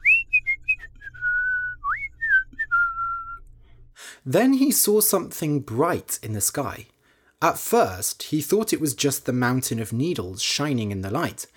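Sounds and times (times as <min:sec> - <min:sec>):
person whistling a tune: 0:00.0 - 0:03.5
speech: 0:04.2 - 0:11.5.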